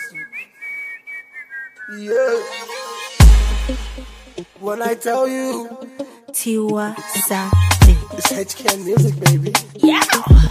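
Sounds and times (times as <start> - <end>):
high steady warbling whistle: 0.0 - 3.8
speech: 1.9 - 2.8, 3.7 - 4.0, 4.6 - 10.4
busy musical backing: 2.4 - 10.4
heavy booming bass hit: 3.2 - 4.4.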